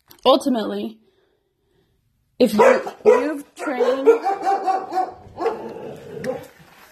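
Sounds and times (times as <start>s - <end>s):
speech: 0.2s - 1.0s, 2.4s - 5.6s
dogs barking excitedly: 2.5s - 6.6s.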